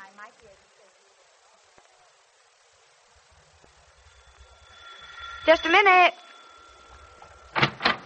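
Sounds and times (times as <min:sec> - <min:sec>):
speech: 0:05.5 - 0:06.2
door opening: 0:07.2 - 0:08.0.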